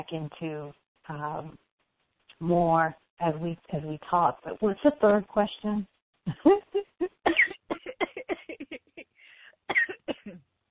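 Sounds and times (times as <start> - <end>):
speech: 0.0 - 1.7, 2.4 - 6.8
person coughing after choking on water: 7.1 - 8.8, 9.7 - 10.4
wheezy breath: 9.1 - 9.7.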